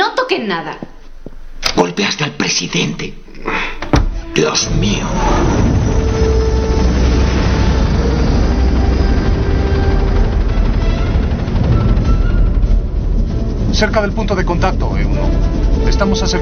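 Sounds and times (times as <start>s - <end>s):
speech: 0.3s - 0.9s, 1.7s - 5.7s, 13.8s - 16.4s
faint helicopter engine whine: 4.7s - 16.4s
helicopter engines and rotors roaring: 4.7s - 16.4s.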